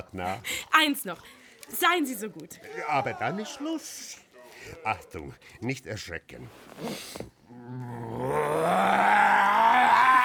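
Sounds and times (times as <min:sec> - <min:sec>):
speech: 0:00.1 - 0:09.0
person imitating a sabre-toothed tiger's roar: 0:07.6 - 0:10.2.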